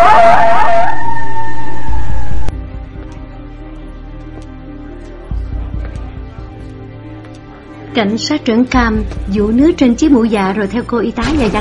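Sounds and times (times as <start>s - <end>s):
dog howling: 0.0s - 2.5s
speech: 8.0s - 11.5s.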